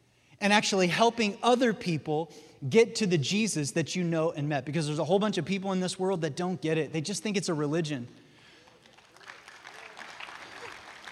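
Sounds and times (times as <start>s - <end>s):
speech: 0.4s - 8.2s
scattered partial applause from an audience: 8.5s - 11.0s.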